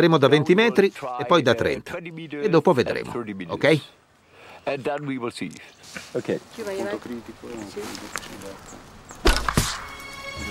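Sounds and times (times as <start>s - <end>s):
speech: 0.0s - 4.0s, 4.6s - 9.6s
arrow hitting a target through clothing: 9.2s - 10.0s.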